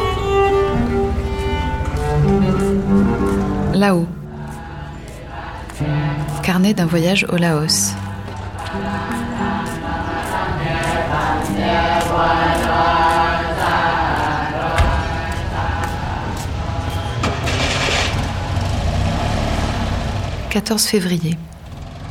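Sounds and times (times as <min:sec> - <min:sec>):
bus engine droning during a ride in thick cold humid fog in Laos: 0:00.0 - 0:22.0
speech: 0:03.8 - 0:04.2, 0:06.5 - 0:08.0, 0:20.6 - 0:21.5.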